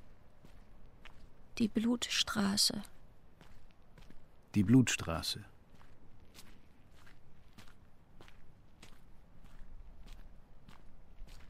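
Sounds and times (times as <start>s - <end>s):
crisp footsteps walking at an even pace: 0.0s - 1.7s, 2.7s - 4.8s, 5.5s - 11.4s
speech: 1.6s - 2.9s, 4.5s - 5.5s.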